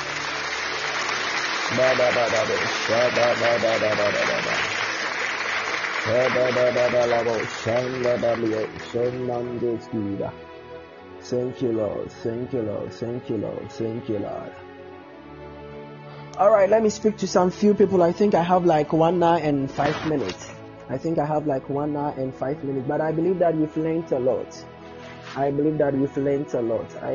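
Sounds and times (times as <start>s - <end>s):
audience clapping: 0.0s - 9.5s
speech: 1.7s - 4.8s, 6.0s - 10.5s, 11.2s - 14.7s, 16.4s - 24.7s, 25.3s - 27.1s.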